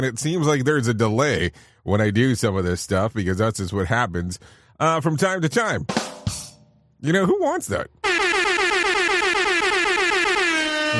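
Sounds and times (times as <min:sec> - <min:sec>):
speech: 0:00.0 - 0:06.4, 0:07.0 - 0:08.5
air horn blaring with a pulsing warbling tone: 0:08.0 - 0:10.9.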